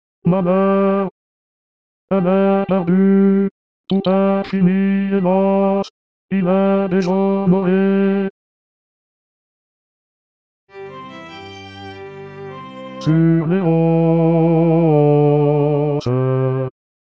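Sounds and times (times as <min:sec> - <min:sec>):
sad opera bass voice: 0:00.3 - 0:01.2, 0:02.1 - 0:08.4, 0:13.0 - 0:16.8.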